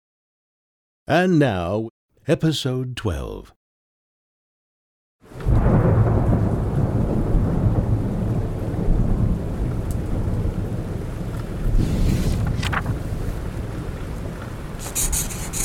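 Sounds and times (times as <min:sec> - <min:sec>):
speech: 0:01.1 - 0:03.6
deep low rumbles of thunder: 0:05.3 - 0:14.8
heavy rain downpour in a thunderstorm: 0:05.3 - 0:15.6.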